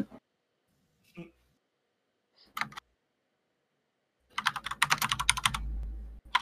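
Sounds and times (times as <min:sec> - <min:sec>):
computer keyboard typing: 0:02.5 - 0:02.9, 0:04.3 - 0:06.3
low rumble: 0:05.4 - 0:06.3.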